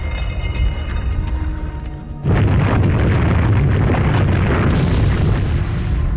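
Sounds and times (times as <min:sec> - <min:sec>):
low rumbling drone: 0:00.0 - 0:06.1
loud sustained roar of crashing and rumbling in a game: 0:02.2 - 0:06.1.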